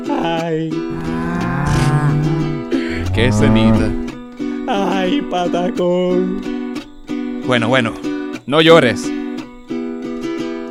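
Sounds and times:
speech: 0.0s - 1.1s, 3.2s - 4.0s, 4.7s - 6.6s, 7.5s - 9.2s
cow mooing with a long deep bellow: 0.9s - 4.2s.

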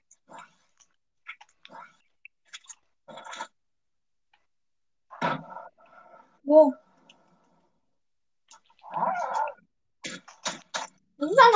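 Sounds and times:
person chewing food while eating: 0.0s - 3.6s, 8.4s - 11.0s
speech: 6.5s - 6.8s.

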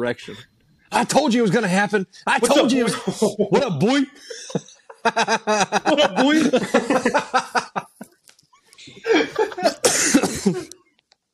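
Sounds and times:
speech: 0.0s - 7.6s
person coughing into a microphone: 2.4s - 3.6s, 9.0s - 10.7s
laughter: 2.4s - 8.2s, 8.8s - 10.8s.

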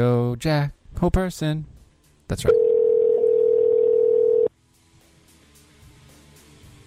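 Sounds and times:
speech: 0.0s - 1.7s, 2.3s - 2.7s
telephone ringback tone of outgoing call: 2.5s - 4.5s.

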